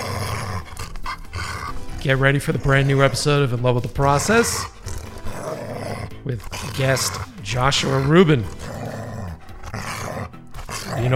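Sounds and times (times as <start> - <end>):
small dog growling: 0.0 - 3.2, 4.1 - 11.1
speech: 2.0 - 4.8, 6.2 - 8.7.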